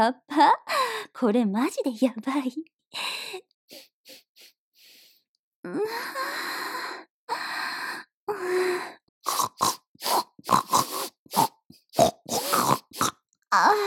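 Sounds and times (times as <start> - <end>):
speech: 0.0 - 4.2, 5.6 - 6.7
human voice imitating pig grunts and squeals: 9.3 - 13.8.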